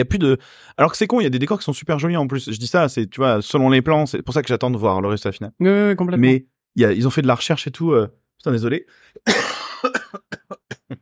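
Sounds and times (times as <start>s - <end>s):
speech: 0.0s - 10.0s
harsh loud cough and smaller coughs: 9.2s - 10.9s.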